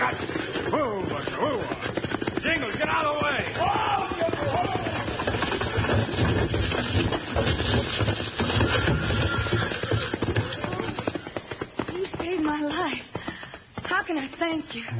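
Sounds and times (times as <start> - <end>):
pounding hooves of horses pulling a wagon at speed: 0.0 - 14.9
rattling rumble of wagon pulled by horses: 0.0 - 14.9
speech: 14.4 - 14.9.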